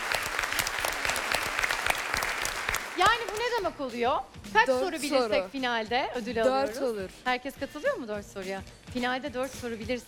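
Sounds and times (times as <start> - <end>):
audience applauding at a quiz game: 0.0 - 3.6
speech: 3.0 - 10.0.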